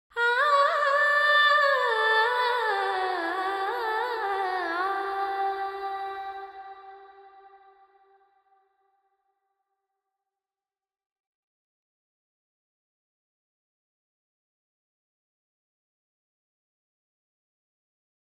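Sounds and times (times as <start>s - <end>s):
female vocals: 0.1s - 7.7s.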